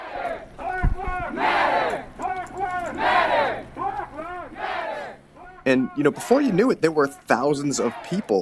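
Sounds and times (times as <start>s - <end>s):
large protest crowd chanting in unison: 0.0s - 6.0s, 7.8s - 8.4s
speech: 5.7s - 8.4s.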